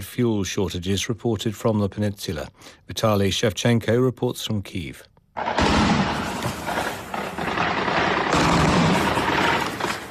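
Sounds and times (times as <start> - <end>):
speech: 0.0 - 5.9
anti-aircraft fire aimed at drones: 5.4 - 10.1.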